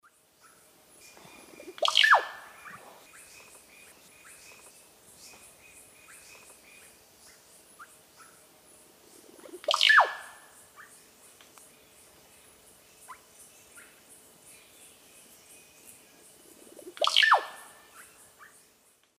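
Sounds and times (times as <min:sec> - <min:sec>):
Psarocolius angustifrons song and calls in South American Eastern Lowlands: 0:00.4 - 0:08.4, 0:09.4 - 0:10.9, 0:16.7 - 0:18.6.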